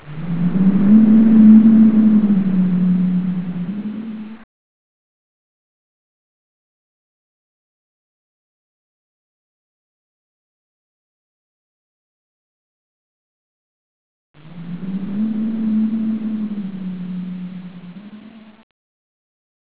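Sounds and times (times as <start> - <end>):
ambience: 0.0 - 4.5, 14.4 - 18.6.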